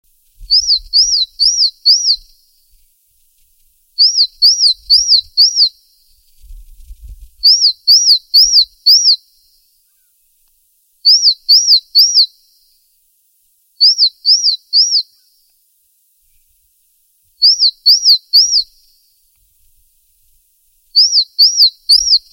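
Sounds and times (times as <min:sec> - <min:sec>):
Parus cyanus calling: 0:00.5 - 0:02.4, 0:04.0 - 0:05.8, 0:07.4 - 0:09.2, 0:11.0 - 0:12.3, 0:13.8 - 0:15.4, 0:17.4 - 0:19.0, 0:20.9 - 0:22.3.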